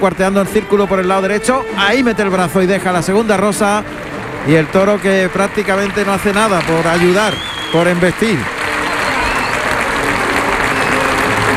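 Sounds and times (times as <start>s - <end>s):
speech: 0.0s - 8.6s
bullring crowd applauding an ovation: 0.0s - 11.5s
faint murmur of crowd voices in the stands: 0.0s - 11.5s.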